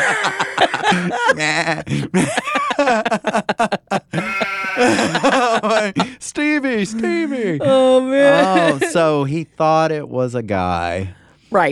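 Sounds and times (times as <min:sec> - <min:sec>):
speech: 0:00.0 - 0:04.9, 0:06.2 - 0:11.7
laughter: 0:00.0 - 0:09.2
goat bleating: 0:04.1 - 0:05.2.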